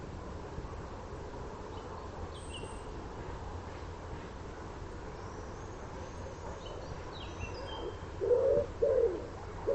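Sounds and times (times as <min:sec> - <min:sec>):
common wood pigeon cooing: 0:07.8 - 0:09.7.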